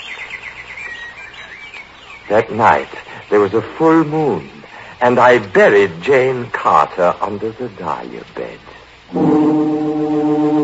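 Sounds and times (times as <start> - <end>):
small birds chirping and twittering: 0.0 - 5.2
speech: 2.3 - 9.6.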